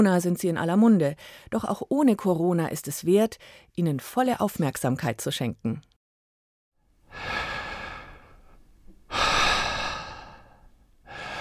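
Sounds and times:
speech: 0.0 - 5.9, 7.1 - 7.4
slow deep breathing close to the microphone: 7.1 - 11.3.

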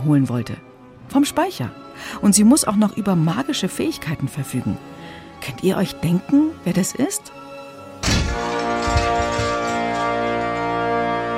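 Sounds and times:
speech: 0.0 - 8.3
loud crash: 8.0 - 10.5.

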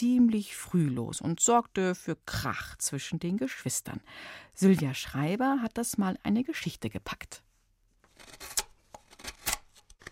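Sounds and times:
speech: 0.0 - 7.5
knife carving wood while whittling a small figure outside on steps: 8.0 - 10.0.

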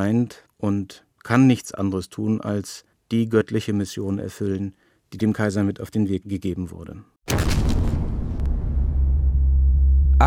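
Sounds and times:
speech: 0.0 - 7.8
faint crackle of debris: 7.3 - 9.0
deep sustained rumble: 7.3 - 10.2
heavy bomb blast: 7.3 - 10.2.

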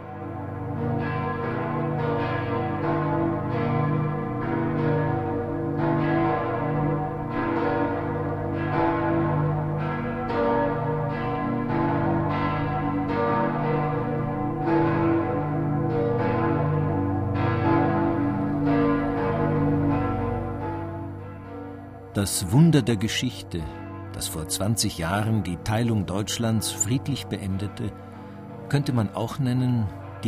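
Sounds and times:
large cathedral church bells ringing in overlapping peals: 0.0 - 30.2
speech: 22.2 - 28.1, 28.7 - 30.2.

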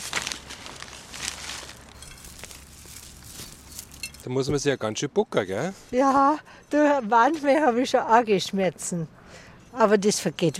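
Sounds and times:
bag of horn shavings rustling and crinkling as it is pulled open: 0.0 - 4.2
speech: 4.2 - 10.5.

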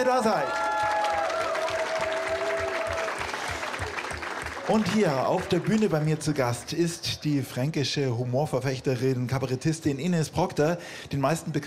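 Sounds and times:
speech: 0.0 - 0.7, 4.7 - 11.6
live audience clapping: 0.0 - 7.0.

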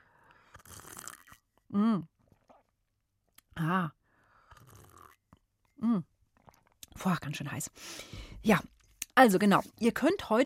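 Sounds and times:
person sipping hot milk with honey: 0.2 - 1.5, 2.2 - 2.8, 4.4 - 5.4
speech: 1.7 - 2.1, 3.7 - 4.0, 5.8 - 6.1, 7.0 - 10.4
person humming: 5.8 - 6.0.

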